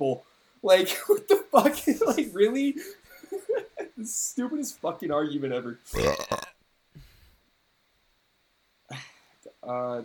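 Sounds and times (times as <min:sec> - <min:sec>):
speech: 0:00.0 - 0:03.0, 0:04.0 - 0:06.5, 0:09.7 - 0:10.0
deep low burp: 0:05.9 - 0:06.6
rough throaty gulp: 0:05.9 - 0:06.6.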